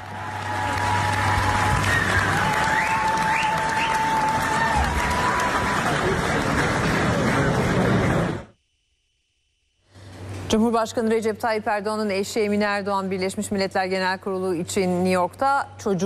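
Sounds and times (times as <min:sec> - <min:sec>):
large audience applauding in a hall at a panel: 0:00.0 - 0:08.5
speech: 0:10.6 - 0:16.0.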